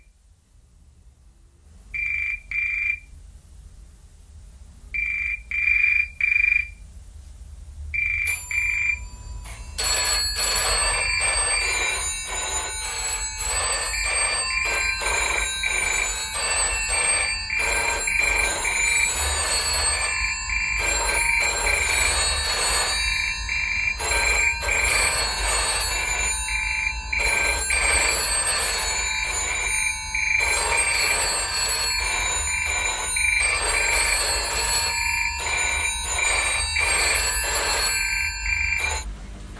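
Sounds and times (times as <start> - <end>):
telephone bell ringing with a bright metallic trill: 2.0 - 3.0, 5.0 - 6.8, 8.0 - 39.1.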